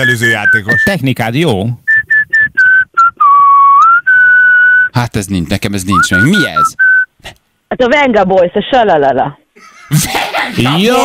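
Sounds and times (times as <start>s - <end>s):
person whistling a catchy pop melody: 0.0s - 1.0s, 1.9s - 4.9s, 5.9s - 7.1s
speech: 0.0s - 1.8s, 5.0s - 11.0s
laughter: 9.6s - 11.0s.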